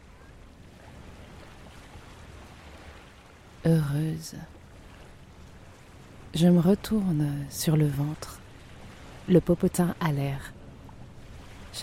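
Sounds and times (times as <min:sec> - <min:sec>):
ocean waves: 0:00.0 - 0:11.8
wind: 0:00.0 - 0:11.8
speech: 0:03.6 - 0:04.6, 0:06.3 - 0:08.4, 0:09.3 - 0:10.6.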